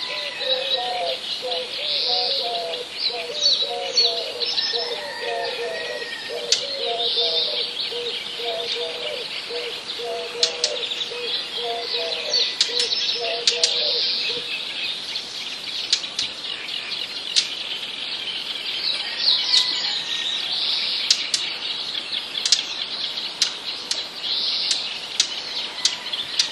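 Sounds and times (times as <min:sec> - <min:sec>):
Eurasian collared dove cooing in a village: 0:00.0 - 0:14.5
small birds chirping and twittering in a village: 0:00.0 - 0:26.5.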